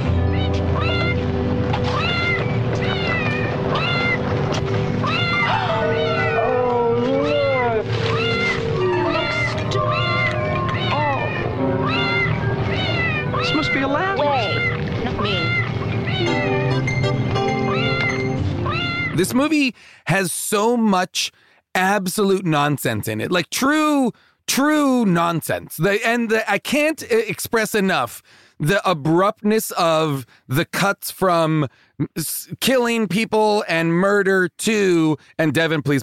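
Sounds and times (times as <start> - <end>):
steady music: 0.0 - 19.4
dubbed cat meows varied in pitch: 1.8 - 4.2, 5.0 - 16.8, 17.7 - 19.2
speech: 19.4 - 36.0.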